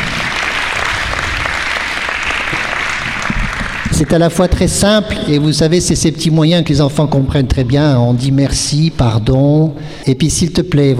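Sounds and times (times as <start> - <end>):
crowd of people clapping for a young girl: 0.0 - 4.6
speech: 4.0 - 10.9.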